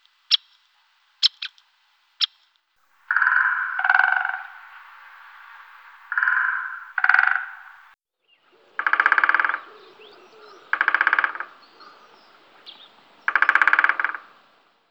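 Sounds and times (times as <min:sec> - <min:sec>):
great spotted woodpecker: 0:03.1 - 0:14.6.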